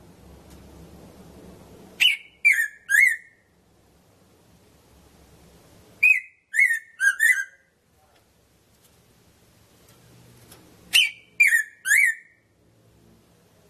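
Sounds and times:
Red-throated parrotfinch Erythrura psittacea sharp call notes: 2.0 - 3.4, 6.0 - 7.6, 10.9 - 12.4.

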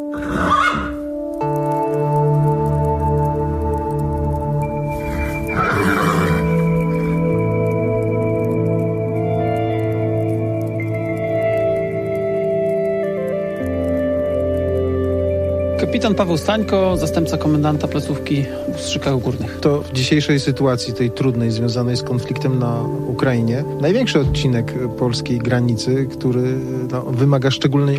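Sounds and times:
horse neighing at a Polish border guard post in Ustrzyki Górne: 0.0 - 1.1, 4.9 - 7.2
steady sustained musical drone: 0.0 - 27.9
speech: 16.0 - 27.9.

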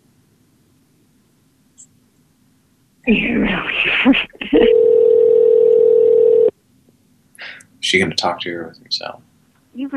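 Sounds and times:
speech: 3.1 - 4.7, 7.9 - 9.9
telephone tone of a call placed to reach a voicemail: 4.6 - 6.5.

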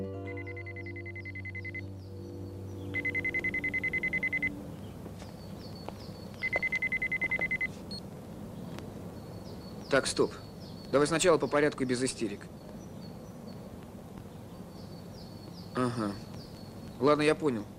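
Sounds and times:
mobile phone ringing beside a parked car: 0.3 - 1.8, 2.9 - 4.6, 6.4 - 8.0
speech: 9.9 - 12.6, 15.8 - 16.3, 17.0 - 17.7.

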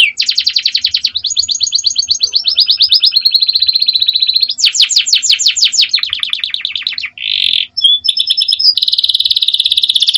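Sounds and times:
female Belgian canary singing fast high trills: 0.0 - 10.1.

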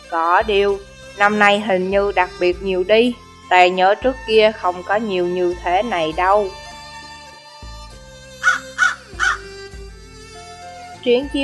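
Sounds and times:
speech: 0.1 - 6.6, 11.0 - 11.4
black crow cawing as it flies overhead: 8.2 - 9.8.

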